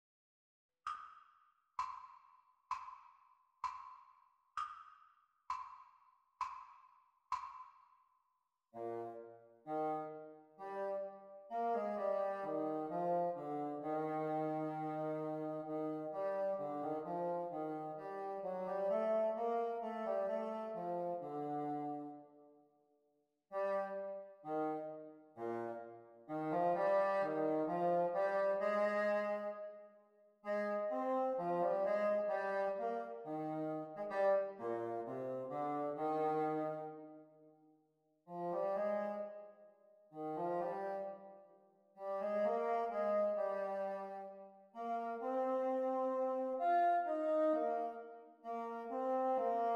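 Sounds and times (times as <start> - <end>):
bassoon duet practice: 8.8 - 22.2, 23.5 - 29.8, 30.5 - 37.1, 38.3 - 39.5, 40.2 - 41.3, 42.0 - 49.7.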